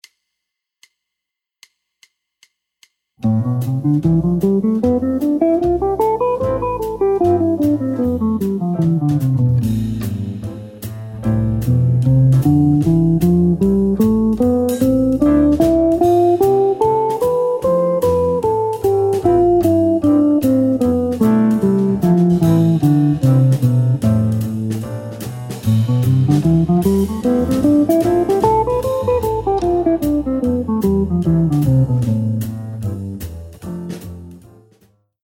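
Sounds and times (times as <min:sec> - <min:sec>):
guitar in aeolian mode: 0:03.2 - 0:33.0.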